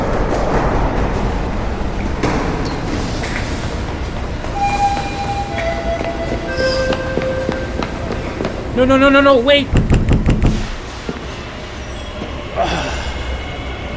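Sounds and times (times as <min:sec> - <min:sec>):
train pulling away from a station with rolling wheels rumbling: 0:00.0 - 0:13.9
train metallic squeals: 0:04.5 - 0:08.2
speech: 0:08.8 - 0:09.8.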